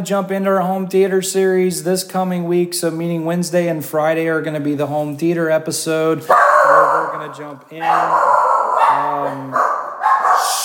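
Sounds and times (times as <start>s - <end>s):
speech: 0.0s - 8.3s, 9.0s - 9.6s
frantic dog barking: 6.3s - 10.6s.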